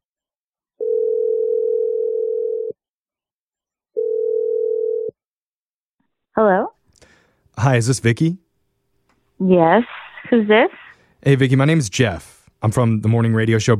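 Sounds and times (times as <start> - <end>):
telephone dial tone: 0.8 - 2.7, 4.0 - 5.1
speech: 7.6 - 8.4, 9.4 - 13.7.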